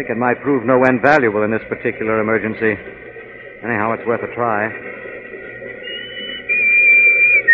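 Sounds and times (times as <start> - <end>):
speech: 0.0 - 5.1
shrill whistle blast: 5.8 - 7.5.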